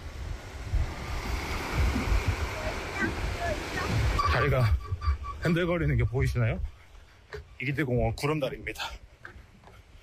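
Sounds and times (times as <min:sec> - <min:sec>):
wind noise: 0:00.0 - 0:06.9
sea waves breaking along the shore: 0:00.0 - 0:10.0
speech: 0:04.4 - 0:04.8, 0:05.4 - 0:06.7, 0:07.3 - 0:09.0.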